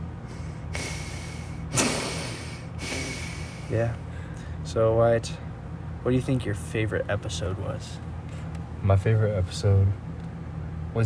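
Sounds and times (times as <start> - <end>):
steady breathing: 0.0 - 4.7
constant low humming fan: 0.0 - 11.0
speech: 3.7 - 4.1, 4.7 - 5.4, 6.0 - 8.1, 8.8 - 10.0.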